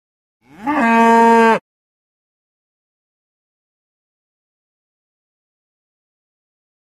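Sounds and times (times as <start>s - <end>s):
single large cow moo bellow: 0.4s - 1.6s.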